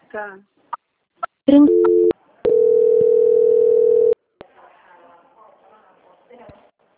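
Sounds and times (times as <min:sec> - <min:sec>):
long steady telephone line tone: 0:01.6 - 0:04.2.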